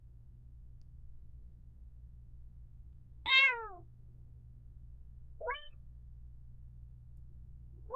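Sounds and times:
faint low hum: 0:00.0 - 0:07.9
tiny weak domestic cat kitten mewing: 0:03.3 - 0:03.8, 0:05.4 - 0:05.8.

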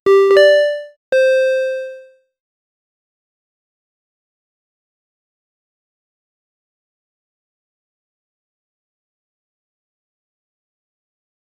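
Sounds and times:
puzzle game match sound: 0:00.1 - 0:02.1.

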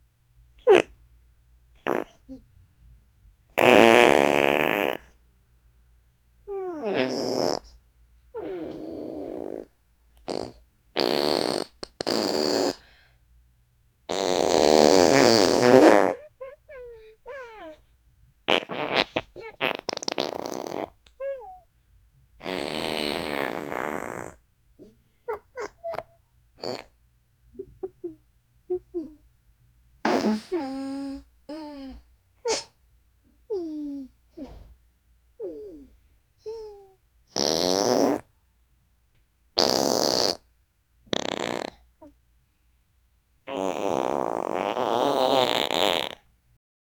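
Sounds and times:
farting as a gag: 0:00.6 - 0:00.9, 0:01.8 - 0:02.2, 0:03.6 - 0:05.2, 0:06.8 - 0:07.8, 0:08.4 - 0:09.7, 0:10.3 - 0:12.8, 0:14.1 - 0:17.7, 0:18.5 - 0:21.6, 0:22.4 - 0:24.4, 0:26.6 - 0:27.0, 0:30.0 - 0:31.2, 0:37.3 - 0:38.3, 0:39.6 - 0:40.5, 0:41.1 - 0:41.9, 0:43.5 - 0:46.3.

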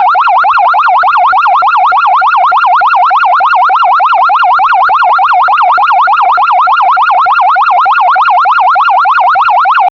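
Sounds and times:
retro sci-fi non-melodic emergency sound: 0:00.0 - 0:09.9.

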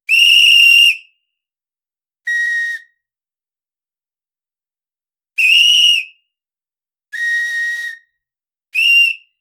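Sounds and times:
lifeguard whistle tweeting: 0:00.1 - 0:01.2, 0:02.3 - 0:03.0, 0:05.4 - 0:06.2, 0:07.2 - 0:08.2, 0:08.8 - 0:09.3.

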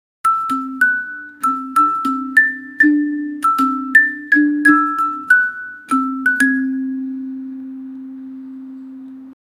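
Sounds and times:
playful marimba background music: 0:00.3 - 0:07.8.

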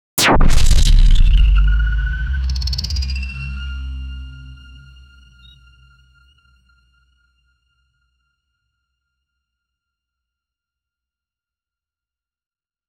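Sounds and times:
quick sci fi energy burst: 0:00.2 - 0:02.0.

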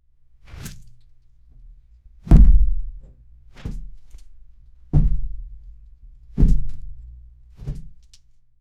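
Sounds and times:
heavy steps of a large tyrannosaurus rex: 0:02.3 - 0:04.0, 0:04.9 - 0:08.0.

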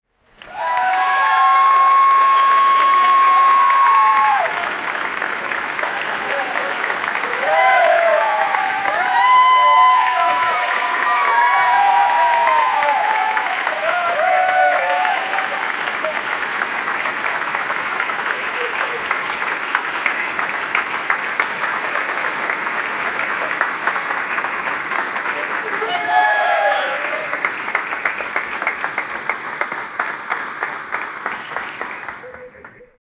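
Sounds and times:
applause outdoors: 0:00.3 - 0:33.0
cheering outdoors: 0:00.4 - 0:32.7.

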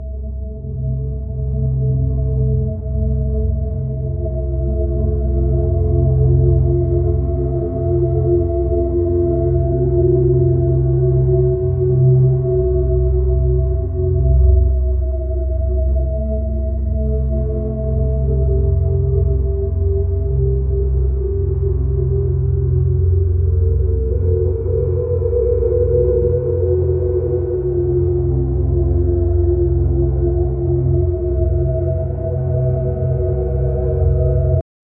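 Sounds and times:
slow dark ambient drone: 0:00.0 - 0:34.6.

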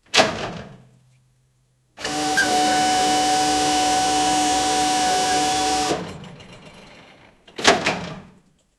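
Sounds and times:
forklift hydraulics lowering: 0:02.0 - 0:08.1.

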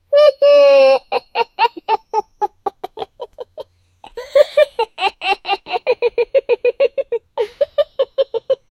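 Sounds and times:
pet puppy laughing: 0:00.9 - 0:03.6, 0:04.3 - 0:08.7.

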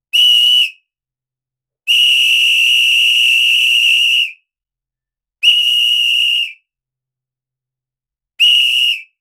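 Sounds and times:
sharp referee whistle: 0:00.1 - 0:00.9, 0:01.9 - 0:04.5, 0:05.4 - 0:06.7, 0:08.4 - 0:09.2.

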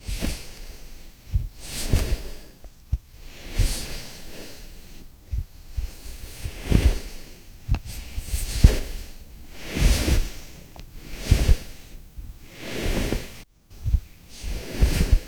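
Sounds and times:
muffled clothing movement: 0:00.0 - 0:15.2.

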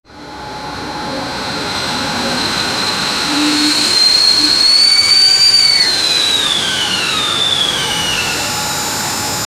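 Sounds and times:
steam engine idling: 0:00.4 - 0:09.4.

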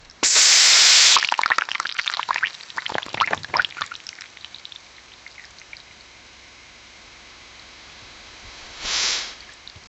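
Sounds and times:
soda hissing and bubbling: 0:00.0 - 0:06.0, 0:08.4 - 0:09.9.

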